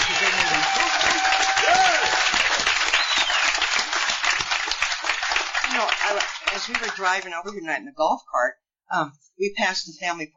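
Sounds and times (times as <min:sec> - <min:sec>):
faint whistles and cheers: 0:00.0 - 0:03.8
crowd applauding: 0:00.0 - 0:07.4
speech: 0:06.6 - 0:10.3.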